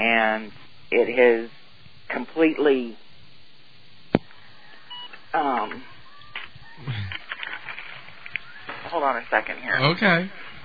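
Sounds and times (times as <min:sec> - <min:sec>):
speech: 0:00.1 - 0:03.0, 0:05.3 - 0:05.9, 0:08.9 - 0:10.4
phone giving short electronic beeps: 0:04.9 - 0:05.8
handling noise: 0:05.2 - 0:09.0
brief murmured voice: 0:06.7 - 0:07.2.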